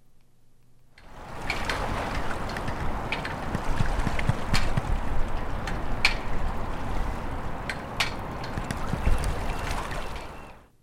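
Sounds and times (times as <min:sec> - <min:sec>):
flagpole's flag line slapping against the aluminum pole: 0:01.0 - 0:06.6, 0:07.6 - 0:09.4
river water rushing past a maritime memorial under a bridge: 0:01.0 - 0:10.6
traffic: 0:01.0 - 0:10.6.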